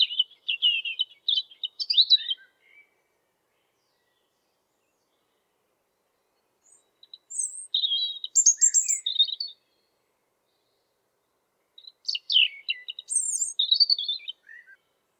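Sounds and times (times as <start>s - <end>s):
European robin singing high thin notes and liquid trills: 0.0s - 2.9s, 6.6s - 9.9s, 11.8s - 15.0s.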